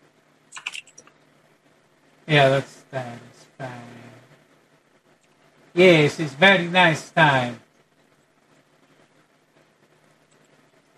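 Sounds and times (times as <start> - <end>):
typing on a computer keyboard: 0.5 - 1.2
speech: 2.3 - 3.8, 5.8 - 7.6.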